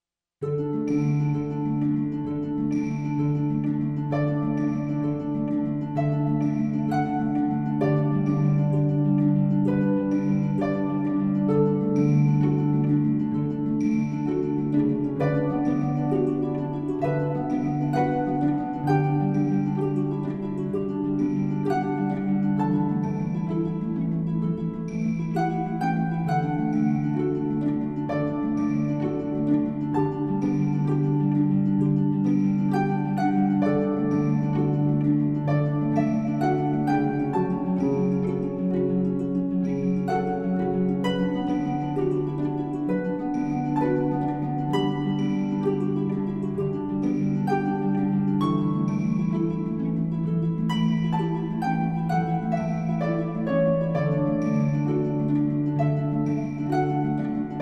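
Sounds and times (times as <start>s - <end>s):
Celtic harp: 0.4s - 57.6s.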